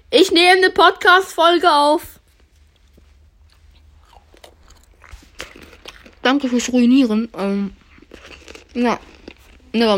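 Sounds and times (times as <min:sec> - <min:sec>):
low steady hum: 0:00.0 - 0:09.9
speech: 0:00.6 - 0:02.1, 0:06.3 - 0:09.1, 0:09.7 - 0:09.9
chocolate cookies crunching when bitten: 0:02.4 - 0:09.9.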